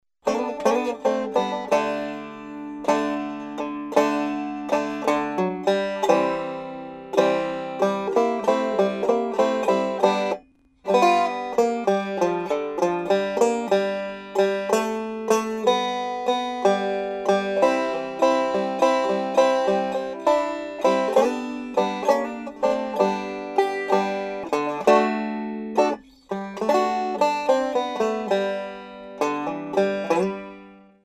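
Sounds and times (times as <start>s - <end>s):
blues music in G: 0.2s - 30.8s.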